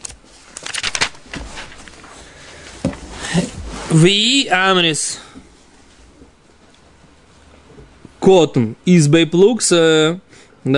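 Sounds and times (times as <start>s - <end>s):
book page being turned: 0.0s - 4.0s
speech: 3.4s - 5.3s, 8.2s - 10.7s.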